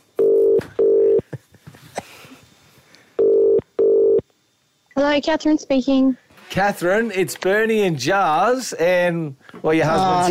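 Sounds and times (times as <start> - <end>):
telephone double ring: 0.2 - 1.2, 3.2 - 4.2
speech: 5.0 - 10.2.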